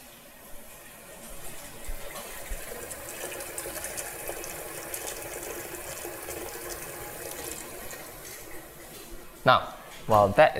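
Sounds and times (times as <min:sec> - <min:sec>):
tap water filling a big pot: 0:01.1 - 0:09.1
speech: 0:09.5 - 0:10.5.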